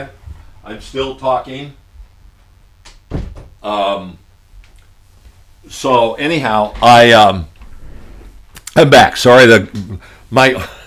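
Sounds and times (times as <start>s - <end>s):
speech: 0.0s - 1.8s, 3.6s - 4.2s, 5.6s - 7.5s, 8.8s - 10.8s
door thudding shut: 3.1s - 3.6s.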